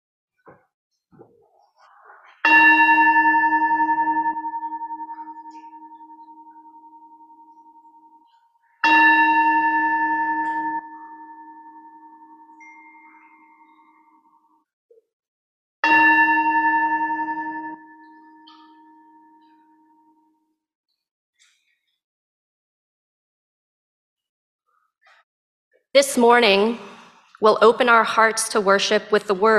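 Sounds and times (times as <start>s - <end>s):
worship bell ringing: 2.4s - 14.4s, 15.8s - 20.1s
speech: 26.0s - 29.5s.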